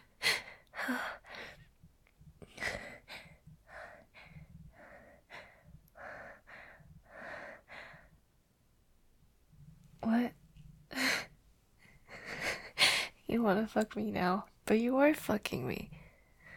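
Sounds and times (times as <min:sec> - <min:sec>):
person breathing heavily, catching their breath: 0:00.0 - 0:01.7, 0:02.4 - 0:08.2, 0:10.9 - 0:13.2
speech: 0:00.9 - 0:01.2, 0:13.4 - 0:16.0.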